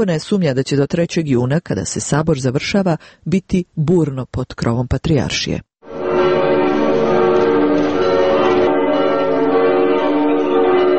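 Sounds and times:
speech: 0.0 - 5.7
church bells ringing to welcome bishops: 5.9 - 10.9.

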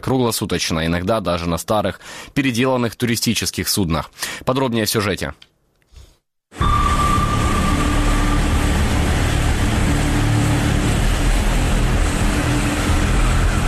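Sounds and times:
speech: 0.0 - 5.5
American-built 34-foot patrol boat engine roaring: 6.6 - 13.6.

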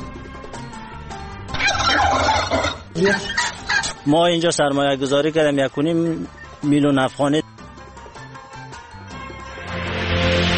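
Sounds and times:
turkeys gobbling on a turkey breeding farm in Takhar: 1.5 - 4.1
speech: 3.0 - 7.4.

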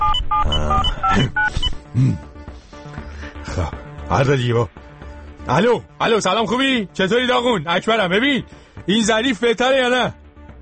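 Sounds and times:
two-tone telephone dialing beeps: 0.0 - 1.8
speech: 2.0 - 2.3, 3.6 - 4.9, 5.5 - 10.2.

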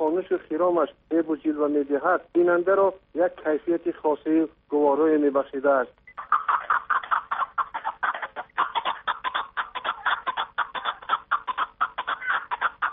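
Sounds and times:
speech: 0.2 - 6.0
partridges calling with harsh clucking notes: 6.2 - 12.9.

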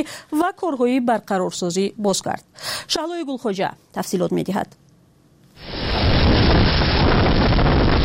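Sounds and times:
speech: 0.0 - 4.8
powerful storm wind roaring and battering the microphone: 5.6 - 8.0.

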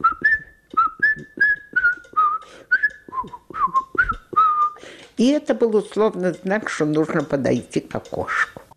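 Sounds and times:
person whistling a classical fugue as a signal: 0.0 - 4.8
speech: 5.2 - 8.5.

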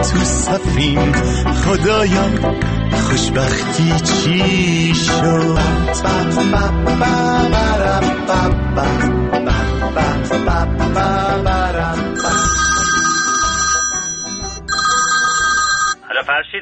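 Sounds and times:
speech: 0.1 - 12.6, 16.2 - 16.6
melodic electronic telephone ringtone: 12.2 - 16.1.

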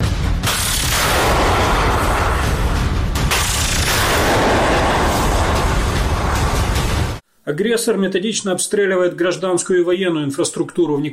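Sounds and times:
loud rumbling explosion of a missile shot down by an Igla MANPADS over Mykolaiv region, Ukraine: 0.9 - 7.2
speech: 7.5 - 11.1.

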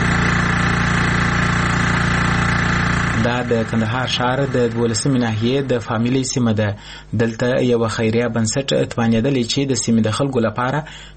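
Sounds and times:
generator running at a water point in Kandahar city: 0.0 - 7.1
speech: 3.3 - 11.1.

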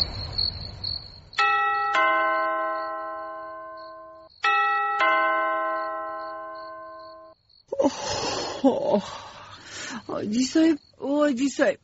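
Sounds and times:
doorbell chime ringing at night: 1.4 - 7.4
person talking: 7.8 - 9.2, 9.8 - 11.8.

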